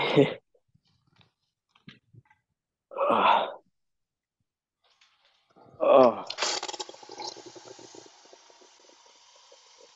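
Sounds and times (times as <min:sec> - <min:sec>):
speech: 0:00.2 - 0:00.4, 0:05.8 - 0:06.4
faucet running, filling a water bottle: 0:06.2 - 0:09.9.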